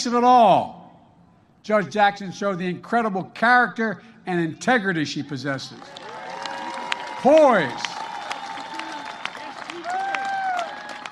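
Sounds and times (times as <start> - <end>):
speech: 0.0 - 0.8, 1.6 - 6.0, 7.2 - 8.0
crowd clapping: 5.8 - 11.1.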